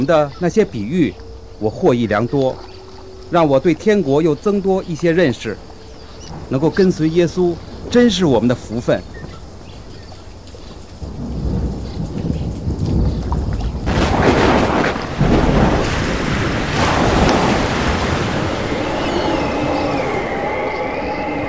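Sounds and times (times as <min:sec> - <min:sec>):
speech: 0:00.0 - 0:02.7, 0:03.3 - 0:05.7, 0:06.3 - 0:09.2
strong howling wind with whistling gusts: 0:00.0 - 0:21.4
stormy waves crashing: 0:13.9 - 0:21.4.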